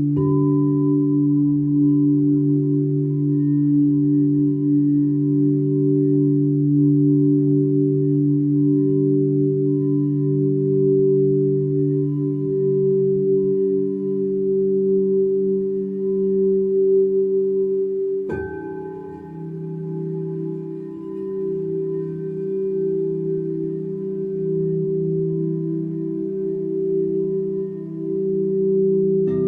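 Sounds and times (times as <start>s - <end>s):
singing bowls ringing: 0.1s - 29.4s
singing bowl strikes: 18.3s - 23.8s.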